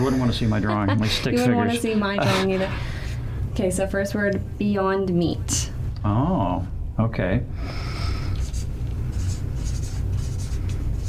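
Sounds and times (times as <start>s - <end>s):
speech: 0.0s - 3.0s, 3.6s - 7.9s
low steady hum: 0.0s - 11.0s
pen scratching on paper writing a word: 8.4s - 11.0s.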